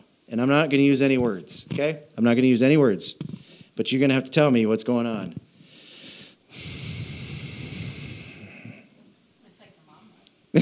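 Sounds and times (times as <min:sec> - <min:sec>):
speech: 0:00.3 - 0:05.4, 0:06.5 - 0:06.8
long breath drawn in through the nose: 0:05.6 - 0:08.9.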